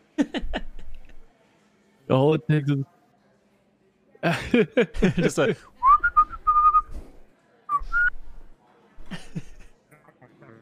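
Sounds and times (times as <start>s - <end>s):
laughter: 0.0s - 1.3s, 4.2s - 6.2s, 9.0s - 10.6s
speech: 0.2s - 0.5s, 2.1s - 3.0s, 4.2s - 5.7s
person whistling a bouncy jaunty tune: 5.8s - 7.0s.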